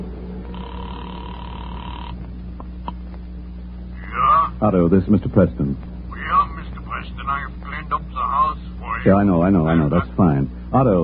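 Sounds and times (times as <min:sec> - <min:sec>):
low telephone line buzz: 0:00.0 - 0:04.3
steady telephone tone: 0:00.4 - 0:02.2
speech: 0:04.6 - 0:05.9, 0:09.0 - 0:11.0.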